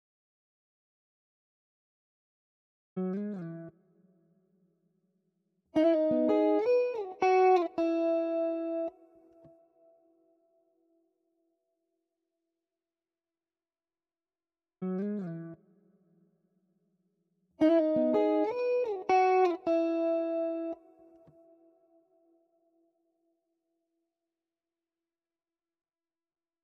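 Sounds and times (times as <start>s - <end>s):
guitar loop in E major: 5.8s - 9.0s, 17.6s - 20.9s.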